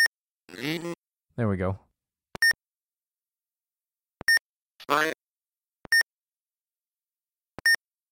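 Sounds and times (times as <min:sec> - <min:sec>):
speech: 0:00.6 - 0:01.9, 0:04.9 - 0:05.2
short bright electronic beeps from a German timer: 0:02.4 - 0:02.6, 0:04.2 - 0:04.4, 0:05.9 - 0:06.1, 0:07.6 - 0:07.8.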